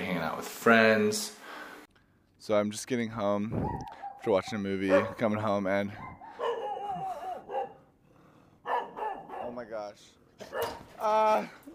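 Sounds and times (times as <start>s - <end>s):
speech: 0.3s - 1.4s, 2.4s - 6.2s, 9.6s - 11.6s
dog barking and yowling at a person coming home late: 3.6s - 5.3s, 6.0s - 7.9s, 8.6s - 9.6s, 10.4s - 10.9s.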